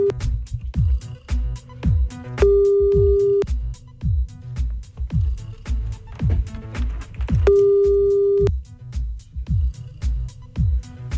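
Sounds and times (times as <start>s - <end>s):
loud pulsing rhythmic beat: 0.0s - 11.1s
telephone ringback tone of an outgoing call: 2.4s - 3.4s, 7.5s - 8.5s.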